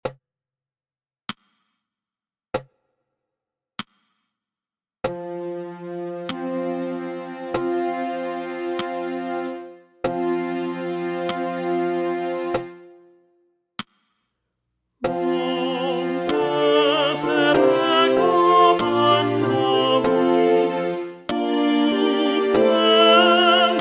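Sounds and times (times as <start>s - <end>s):
tenor instrument: 5.1s - 13.1s, 15.0s - 23.7s.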